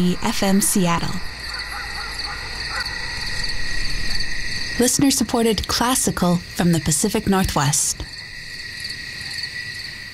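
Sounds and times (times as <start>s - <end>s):
speech: 0.0s - 1.3s, 4.8s - 8.1s
crickets chirping: 0.0s - 10.1s.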